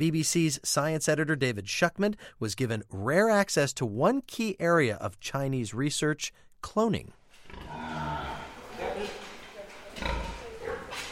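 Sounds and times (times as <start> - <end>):
speech: 0.0 - 8.0
pigs carrying cloned embryos grunting and snorting in a giant shed: 7.4 - 11.0
steady murmur of more pigs: 7.5 - 11.0.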